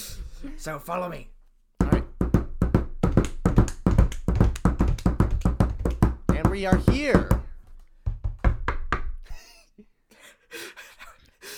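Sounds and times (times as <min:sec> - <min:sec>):
speech: 0:00.6 - 0:01.4, 0:06.6 - 0:07.4
two people knocking on a door: 0:01.8 - 0:09.2.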